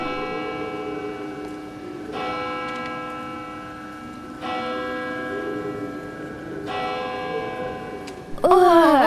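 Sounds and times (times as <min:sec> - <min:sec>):
clock chiming midnight: 0:00.0 - 0:08.5.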